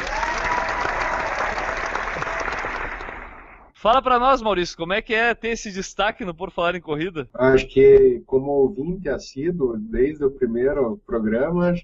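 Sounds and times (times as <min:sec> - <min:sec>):
applause from a group: 0:00.0 - 0:03.8
speech: 0:03.8 - 0:11.8.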